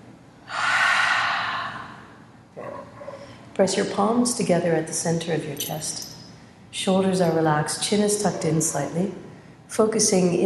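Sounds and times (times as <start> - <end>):
deep breath exhaled through the mouth during a guided breathing exercise: 0.5 - 2.2
speech: 3.6 - 10.4.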